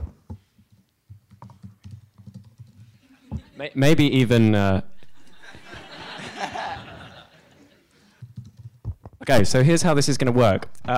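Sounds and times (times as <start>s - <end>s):
typing on a computer keyboard: 0.7s - 3.0s, 8.2s - 8.9s
laughter: 3.0s - 3.8s, 5.0s - 8.1s
speech: 3.6s - 4.9s, 9.3s - 10.9s.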